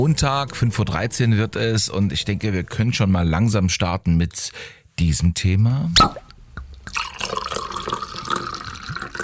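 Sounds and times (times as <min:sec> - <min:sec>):
speech: 0:00.0 - 0:06.3
wine pouring into a glass: 0:06.8 - 0:09.2.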